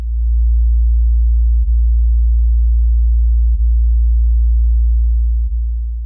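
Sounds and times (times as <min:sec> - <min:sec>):
deep low-frequency sine tone: 0:00.0 - 0:06.0.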